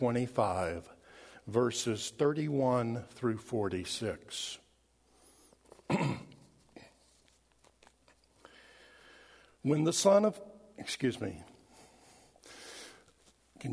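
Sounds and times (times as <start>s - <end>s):
speech: 0.0s - 4.6s, 5.9s - 6.3s, 9.6s - 11.5s
person clearing throat before a gospel reading: 5.8s - 7.1s.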